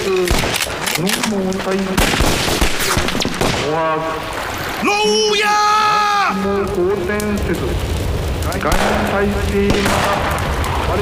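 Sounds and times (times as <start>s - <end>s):
gunfire volley of many sharp loud shots: 0.2s - 0.8s, 1.9s - 3.9s, 8.7s - 10.4s
speech: 1.0s - 2.7s, 3.6s - 10.3s, 10.9s - 11.0s.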